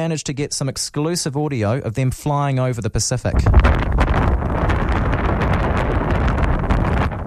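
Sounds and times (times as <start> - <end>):
speech: 0.0 - 4.4
strong wind buffeting across the microphone: 3.2 - 7.2.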